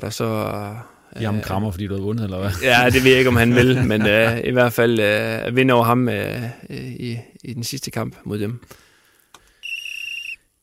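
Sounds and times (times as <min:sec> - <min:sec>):
speech: 0:00.0 - 0:08.8
laughter: 0:02.4 - 0:04.5
loud steady whistle blast: 0:09.6 - 0:10.5.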